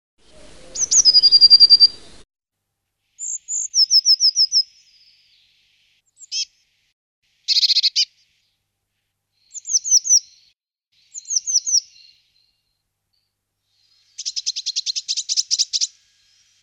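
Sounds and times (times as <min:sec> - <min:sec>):
blue tit Parus caeruleus calling: 0:00.7 - 0:02.1, 0:03.2 - 0:05.5, 0:06.2 - 0:06.6, 0:07.5 - 0:08.2, 0:09.5 - 0:12.2, 0:13.8 - 0:16.5.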